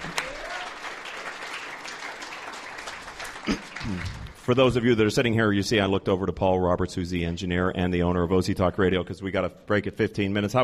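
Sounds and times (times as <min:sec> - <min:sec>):
room full of people applauding: 0:00.0 - 0:04.5
speech: 0:03.4 - 0:10.6.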